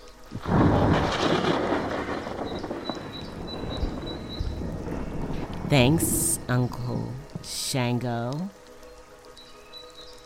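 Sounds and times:
high insect chirps: 0.0 - 5.5, 8.6 - 10.2
faint rain: 0.0 - 10.2
thunder crack overhead rolling into rumble: 0.3 - 7.5
speech: 5.7 - 8.6.

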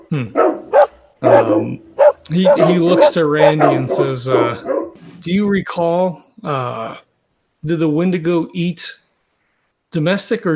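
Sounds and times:
dogs barking from cabins: 0.0 - 5.0
speech: 1.2 - 9.0, 9.9 - 10.5.

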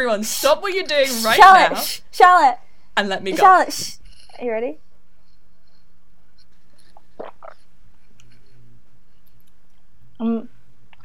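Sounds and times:
speech: 0.0 - 4.8, 10.2 - 10.5
quick soft gulping swallows of drinking water: 7.0 - 7.7.

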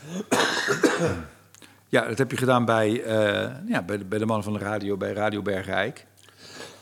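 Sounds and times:
loud harsh cough: 0.0 - 1.4
speech: 1.0 - 6.6.

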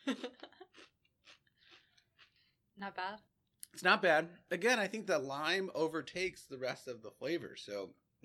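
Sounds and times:
chewing crunches of a potato chip: 0.6 - 2.4
speech: 2.8 - 8.2.

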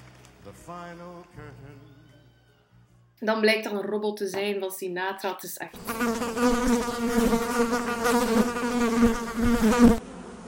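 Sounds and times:
speech: 0.5 - 2.1, 3.2 - 10.0
bee buzzing: 5.8 - 10.4.

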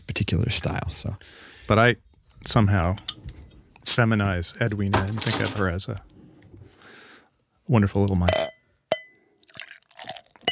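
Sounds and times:
speech: 0.1 - 3.1, 3.9 - 6.1, 7.7 - 8.5
glass clink: 5.2 - 5.6, 8.3 - 9.2
pilsner beer brewed with jasmine flowers pouring into a glass: 9.4 - 10.4.

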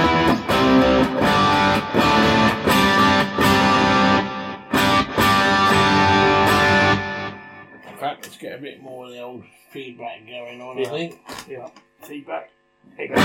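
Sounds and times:
loud distorted electric guitar strummed through a delay effect with repeating echoes: 0.0 - 8.0, 12.9 - 13.2
speech: 8.5 - 13.2.

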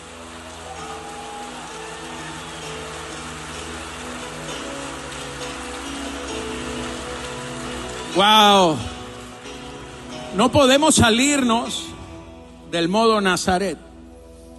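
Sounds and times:
audience applauding: 0.0 - 11.2
faint sustained musical tones: 0.0 - 14.5
speech: 8.2 - 8.9, 10.3 - 11.9, 12.7 - 13.9.

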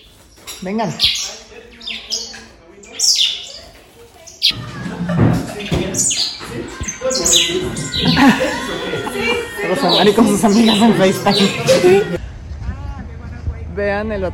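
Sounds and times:
room noise: 0.0 - 12.2
small birds chirping: 0.0 - 12.2
speech: 0.6 - 1.2, 4.5 - 12.2, 13.8 - 14.3
murmuring voices: 1.2 - 12.2
laughter: 4.5 - 12.2.

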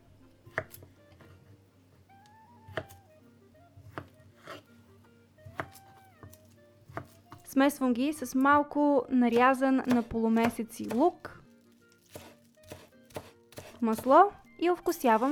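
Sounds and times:
knife chopping potatoes on a cutting board: 2.7 - 3.0, 3.8 - 4.6, 5.5 - 7.4, 9.3 - 11.2, 12.0 - 14.2
speech: 7.6 - 11.3, 13.8 - 15.3.

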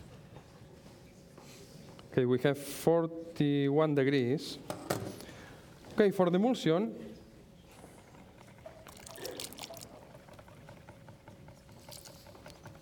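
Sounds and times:
speech: 2.2 - 4.8, 6.0 - 7.1
water poured onto melted chocolate at 41 degrees to make an emulsion: 8.8 - 10.0, 11.8 - 12.6.

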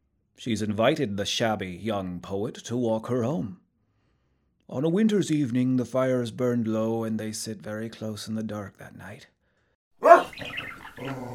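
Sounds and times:
speech: 0.4 - 3.6, 4.7 - 9.4, 11.0 - 11.3
large dog growling: 10.0 - 11.3.

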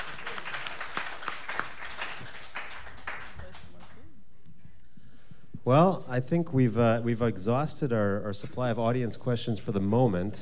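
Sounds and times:
crowd applauding: 0.0 - 4.0
speech: 5.7 - 10.4.

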